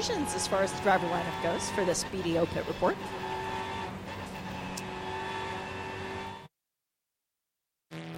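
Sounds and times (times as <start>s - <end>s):
speech: 0.0s - 3.3s
race car engines droning on track: 0.0s - 6.5s.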